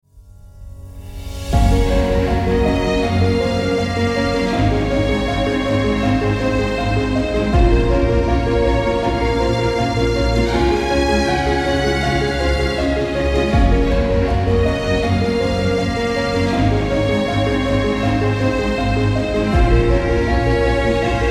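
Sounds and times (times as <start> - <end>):
piano: 0.0 - 21.3
cello: 1.2 - 21.3.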